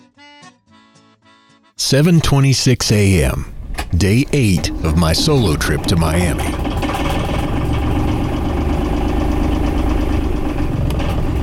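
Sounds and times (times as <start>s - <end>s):
speech: 1.8s - 6.7s
boat motor droning heading out of a marina harbor toward open sea: 3.0s - 11.4s.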